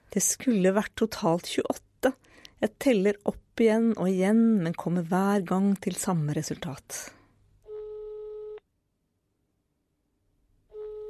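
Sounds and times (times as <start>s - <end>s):
speech: 0.2s - 7.2s
telephone ringback tone: 7.7s - 8.6s, 10.7s - 11.0s.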